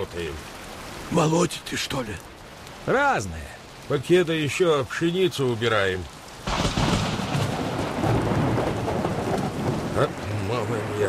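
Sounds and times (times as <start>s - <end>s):
speech: 0.0s - 6.2s, 10.0s - 10.2s
heavy rain: 0.0s - 11.0s
deep thunder rumbling and rolling: 6.4s - 11.0s.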